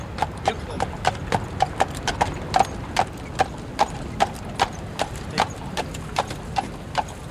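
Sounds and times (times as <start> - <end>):
carriage horses' hooves clip-clopping on pavement in a park: 0.0 - 7.2
low rumble of outdoor noise: 0.0 - 7.2.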